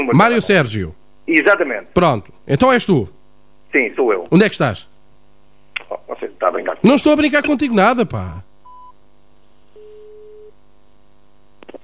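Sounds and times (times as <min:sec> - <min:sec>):
speech: 0:00.0 - 0:04.9, 0:05.9 - 0:08.5
faint telephone line hum: 0:00.0 - 0:11.8
telephone busy tone after a call is hung up: 0:08.7 - 0:09.0, 0:09.8 - 0:10.6.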